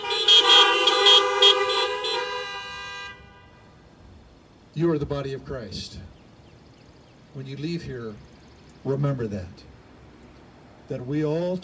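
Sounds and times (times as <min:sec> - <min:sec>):
car horns honking: 0:00.0 - 0:04.0
faint noise: 0:00.0 - 0:11.6
speech: 0:04.8 - 0:06.2, 0:07.4 - 0:09.7, 0:10.9 - 0:11.6.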